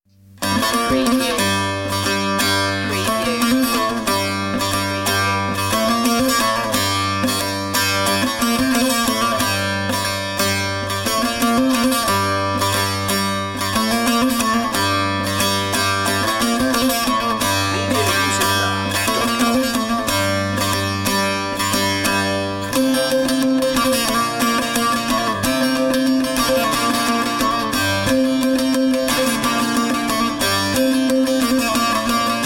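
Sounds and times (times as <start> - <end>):
saz playing eastern ceremony music: 0.4 - 32.4.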